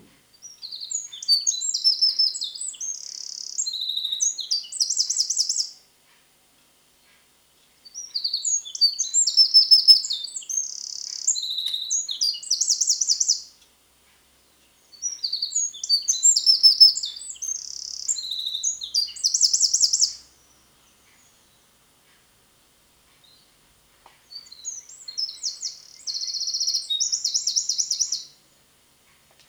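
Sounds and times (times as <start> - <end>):
Eurasian wren: 0.4 - 5.8, 7.9 - 13.5, 15.0 - 21.7, 24.3 - 28.4.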